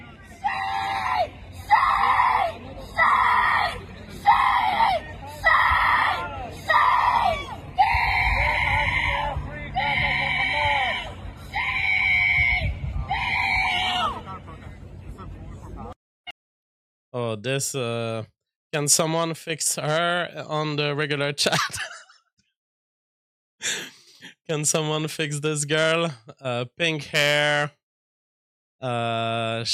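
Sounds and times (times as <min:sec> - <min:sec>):
crowd of people yelling at a protest encampment: 0:00.4 - 0:14.2
speech: 0:17.4 - 0:21.9, 0:24.5 - 0:27.8, 0:28.8 - 0:29.7.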